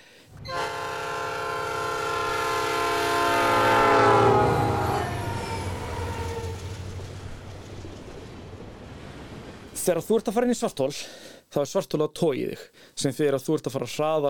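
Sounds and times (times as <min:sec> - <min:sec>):
passing vehicle engine rumbling: 0:00.2 - 0:09.8
passing vehicle horn with Doppler shift: 0:00.4 - 0:05.8
speech: 0:09.9 - 0:14.2.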